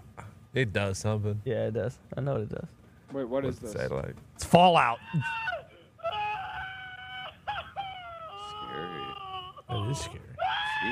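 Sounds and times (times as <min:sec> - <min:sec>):
speech: 0:00.5 - 0:05.4, 0:09.9 - 0:10.9
recorded screaming played through a small phone speaker: 0:05.0 - 0:10.9.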